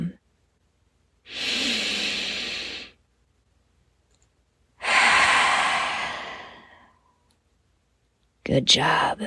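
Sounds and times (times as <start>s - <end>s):
deep breaths in through nose and out through mouth: 1.3s - 3.0s, 4.8s - 7.2s
speech: 8.5s - 9.2s.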